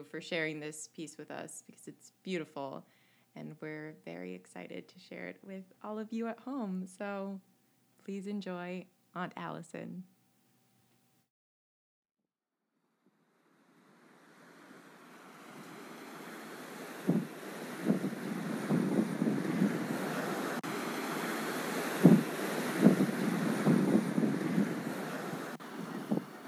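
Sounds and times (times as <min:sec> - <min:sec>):
speech: 0:00.0 - 0:10.1
wind noise: 0:15.5 - 0:26.4
lake waves slapping against a concrete shoreline: 0:16.8 - 0:26.4.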